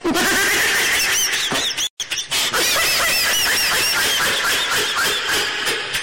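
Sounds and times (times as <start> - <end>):
baby laughing bass boosted: 0.0 - 6.0.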